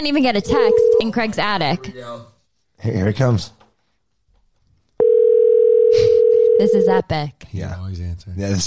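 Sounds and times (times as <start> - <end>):
speech: 0.0 - 3.6, 6.6 - 8.6
telephone dial tone: 5.0 - 6.8.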